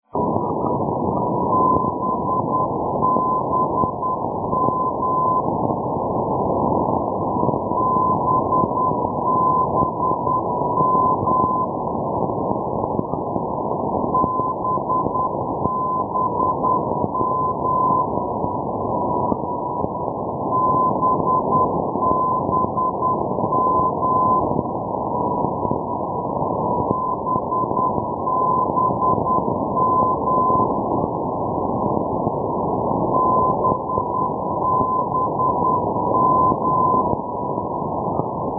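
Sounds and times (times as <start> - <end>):
NDB radio beacon signal at Zielona Gora Babimost: 0.0 - 38.5.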